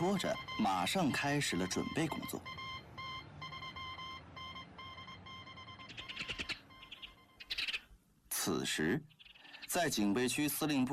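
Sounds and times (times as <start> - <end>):
speech: 0.0 - 2.6, 8.4 - 10.9
high-pitched Morse code beeps: 0.0 - 7.6.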